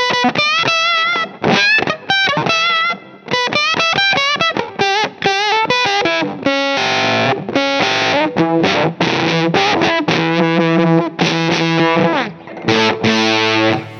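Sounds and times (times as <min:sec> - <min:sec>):
electric guitar through octave fuzz with tone rolled back: 0:00.0 - 0:13.9.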